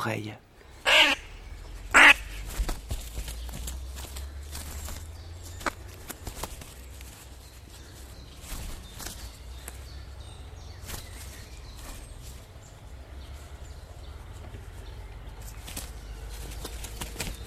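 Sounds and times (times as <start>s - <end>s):
speech: 0.0s - 0.5s
crow giving loud harsh caws: 0.8s - 2.5s
crow wings rustling and flapping: 0.8s - 12.7s, 14.3s - 17.4s.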